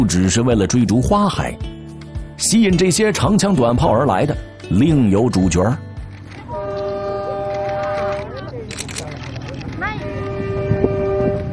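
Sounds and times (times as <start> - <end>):
speech: 0.0 - 1.8, 2.4 - 5.8
suburban train on the S2 suburban railway line rumbling past: 6.4 - 8.5, 9.6 - 11.5.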